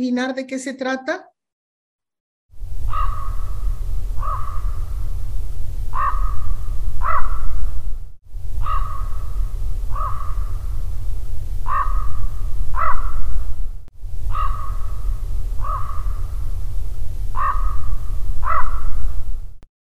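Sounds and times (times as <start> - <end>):
speech: 0.0 - 1.3
steady low rumble of noise: 2.6 - 19.6
crow cawing harshly: 2.9 - 3.6, 4.2 - 5.0, 5.9 - 7.6, 8.6 - 10.6, 11.6 - 13.3, 14.3 - 16.3, 17.3 - 19.0.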